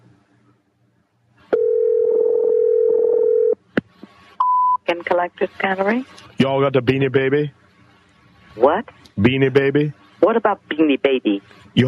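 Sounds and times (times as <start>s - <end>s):
telephone dial tone: 1.6s - 3.6s
speech: 5.2s - 7.6s, 8.6s - 11.8s.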